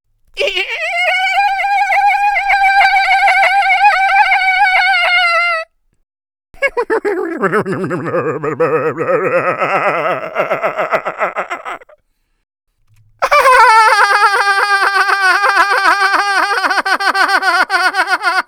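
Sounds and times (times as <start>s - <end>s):
people laughing: 0.4s - 5.6s, 6.6s - 12.0s, 13.2s - 18.4s.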